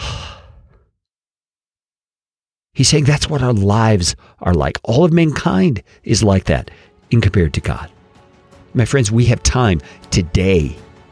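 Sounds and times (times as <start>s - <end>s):
single soft breath exhaled like a sigh: 0.0s - 0.9s, 6.7s - 7.0s
speech: 2.8s - 8.0s, 8.7s - 10.8s.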